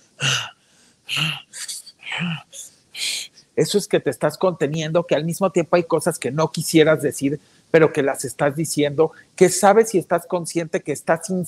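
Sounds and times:
person imitating heavy breathing into a microphone: 0.2s - 0.5s, 1.1s - 3.3s
speech: 3.6s - 11.4s.

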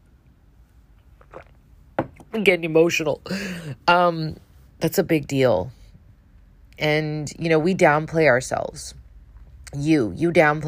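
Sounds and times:
person sipping water: 1.0s - 1.7s
slurp or gulp: 1.1s - 1.6s
speech: 2.3s - 5.8s, 6.8s - 9.0s, 9.7s - 10.6s.

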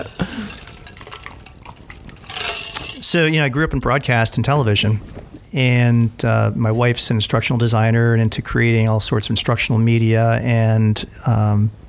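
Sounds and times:
glasses clinking together in a toast: 0.0s - 3.2s
soft sloshing of liquid: 0.0s - 3.3s
speech: 3.0s - 11.8s.

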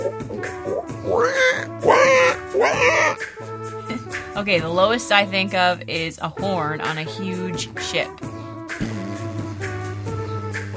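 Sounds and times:
person's voice imitating pig oinking and snorting: 0.0s - 3.2s, 8.7s - 10.6s
speech: 4.4s - 8.9s.

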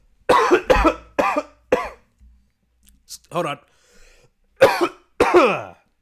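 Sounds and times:
harsh coughs: 0.3s - 2.1s, 4.6s - 5.8s
speech: 3.3s - 3.8s.

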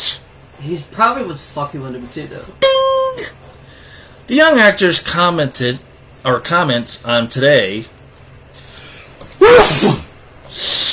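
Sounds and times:
speech: 0.6s - 3.6s, 4.3s - 8.0s, 9.5s - 10.0s
person sneezing: 9.4s - 10.9s.

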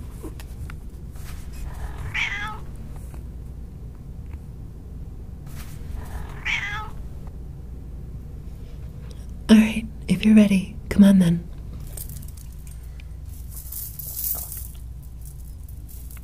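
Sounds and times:
low outdoor rumble: 0.0s - 16.2s
cat meowing in a park: 1.7s - 2.8s, 6.0s - 7.0s
speech: 9.5s - 11.5s.

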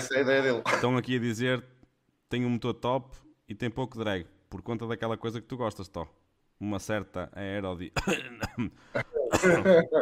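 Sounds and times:
speech: 0.0s - 10.0s
person coughing: 0.6s - 1.0s, 8.0s - 10.0s
throat clearing: 0.6s - 1.0s, 8.0s - 10.0s
chuckle-like voiced sounds from a person: 8.6s - 10.0s.

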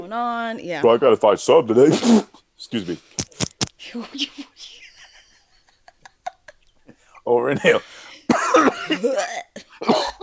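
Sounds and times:
speech: 0.1s - 4.5s, 7.2s - 10.2s
person coughing with harsh wet coughs and throaty rasp: 8.3s - 10.2s.

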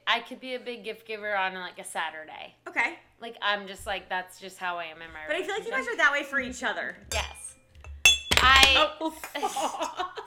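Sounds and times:
people chatting: 0.0s - 7.5s, 8.4s - 10.2s
speech: 0.1s - 7.4s, 8.4s - 10.2s
glasses clinking together in a toast: 7.1s - 8.9s
people laughing: 9.3s - 10.2s.

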